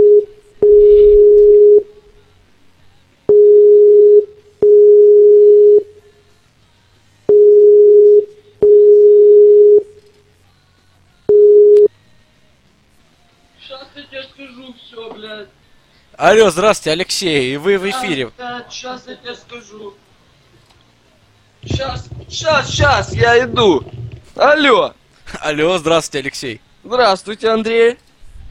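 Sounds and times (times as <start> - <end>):
telephone tones while placing a call: 0.0 - 1.9, 3.3 - 5.9, 7.3 - 10.0, 11.3 - 11.9
speech: 16.2 - 20.0, 21.7 - 28.0.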